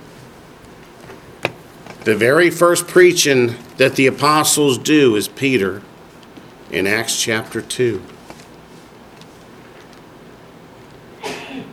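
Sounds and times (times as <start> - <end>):
speech: 2.0 - 5.9, 6.7 - 8.2
person sneezing: 11.2 - 11.7.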